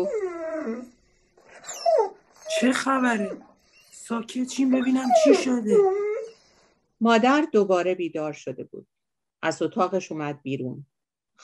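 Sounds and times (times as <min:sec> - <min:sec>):
dog whimpering and howling in high-pitched whining cries: 0:00.0 - 0:06.5
speech: 0:02.6 - 0:03.5, 0:04.1 - 0:06.1, 0:07.0 - 0:11.4.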